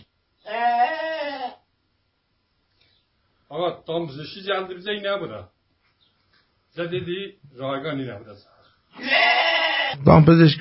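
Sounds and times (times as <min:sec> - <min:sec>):
sheep bleating: 0:00.4 - 0:01.7, 0:08.9 - 0:10.1
speech: 0:03.6 - 0:05.6, 0:06.8 - 0:09.3, 0:09.9 - 0:10.5.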